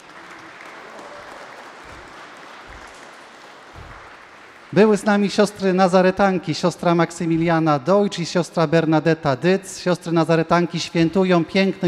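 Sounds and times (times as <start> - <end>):
audience applause: 0.0 - 5.1
speech: 4.7 - 11.8.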